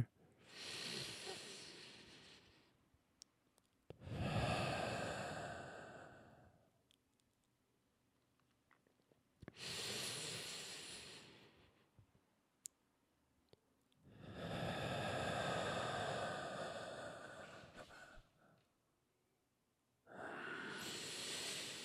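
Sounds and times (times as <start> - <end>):
deep congested breaths from someone on antibiotics: 0.0 - 2.8, 4.0 - 6.6, 9.6 - 11.9, 14.1 - 18.6, 20.1 - 21.8.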